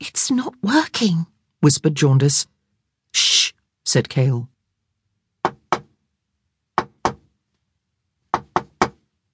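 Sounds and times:
speech: 0.1 - 4.5
firm knocking on a door: 5.4 - 5.9, 6.8 - 7.3, 8.3 - 9.0.

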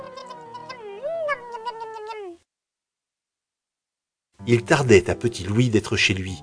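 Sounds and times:
cat meowing: 0.0 - 2.4
speech: 4.5 - 6.4.

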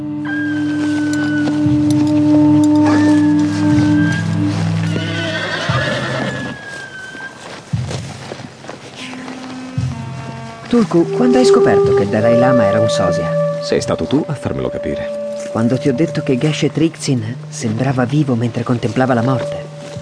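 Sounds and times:
steady sustained tonal backdrop: 0.0 - 20.0
horse hooves clip-clopping: 0.6 - 11.1, 15.2 - 20.0
horses whinnying and neighing: 4.8 - 7.1
speech: 10.8 - 19.6.

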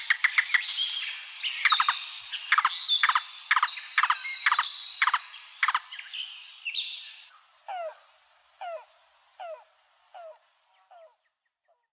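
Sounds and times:
yellow-billed cuckoo calling in North America: 0.0 - 6.1, 7.7 - 8.0, 8.6 - 11.2.

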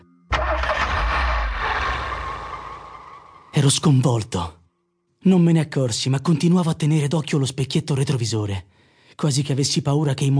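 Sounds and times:
car engine starting with a deep rumble: 0.3 - 3.6
speech: 3.6 - 4.6, 5.2 - 10.3.

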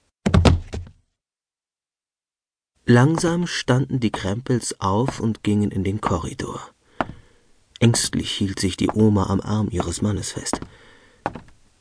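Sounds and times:
dull heavy thuds against a wooden apartment door: 0.3 - 1.0, 10.6 - 11.5
speech: 2.9 - 7.1, 7.8 - 11.4.

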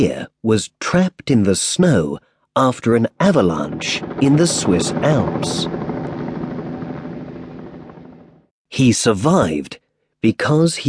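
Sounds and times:
speech: 0.0 - 5.8, 8.7 - 10.8
search helicopter searching for an avalanche-trapped skier in the Swiss Alps: 3.0 - 8.5.

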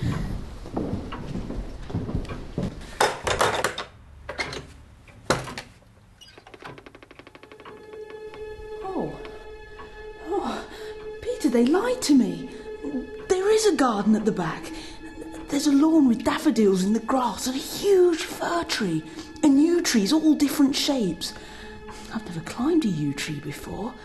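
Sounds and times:
back door faintly creaking: 0.0 - 10.0
back door handle and latch rattling: 3.2 - 8.5
speech: 11.6 - 12.6, 13.6 - 14.8, 15.5 - 24.0.

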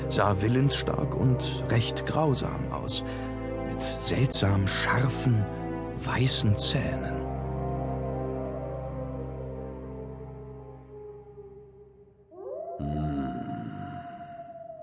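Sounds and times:
speech: 0.1 - 7.2
wolves howling: 7.3 - 14.8.

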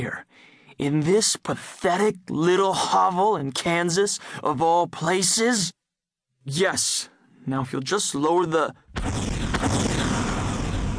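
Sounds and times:
speech: 0.0 - 5.8, 6.4 - 9.9
sharper blast cracking: 8.9 - 10.9
string of deafening explosions merging into heavy rumbling roar: 9.0 - 10.9.

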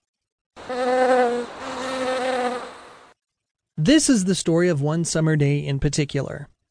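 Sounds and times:
honeybee buzzing as it leaves the hive and flies off: 0.6 - 3.2
speech: 3.8 - 6.5.

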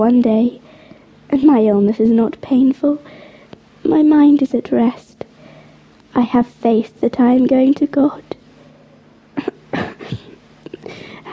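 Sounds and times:
speech: 0.0 - 0.6, 1.3 - 3.2, 3.8 - 5.1, 6.1 - 8.4
harsh raspy coughing: 9.4 - 11.3.

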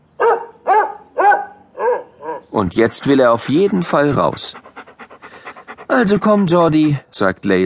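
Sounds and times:
dog barking loud and slightly whiny: 0.2 - 2.5
speech: 2.5 - 4.6, 6.0 - 7.6.

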